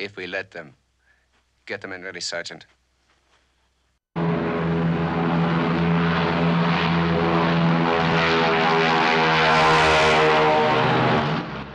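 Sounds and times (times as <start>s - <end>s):
speech: 0.0s - 0.8s, 1.7s - 2.8s
small propeller plane speeding down a runway and taking off: 4.2s - 11.7s.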